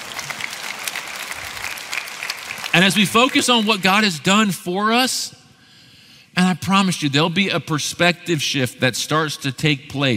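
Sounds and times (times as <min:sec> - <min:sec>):
audience clapping at a church service: 0:00.0 - 0:04.2
speech: 0:02.8 - 0:05.4, 0:06.4 - 0:10.1.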